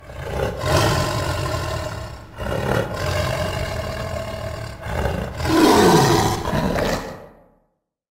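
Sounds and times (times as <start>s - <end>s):
wild boar grunting: 0.0s - 7.4s.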